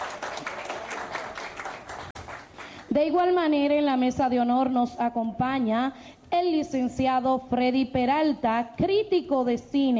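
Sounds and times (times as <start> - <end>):
audience applause at a formal ceremony: 0.0 - 2.8
speech: 2.9 - 9.9.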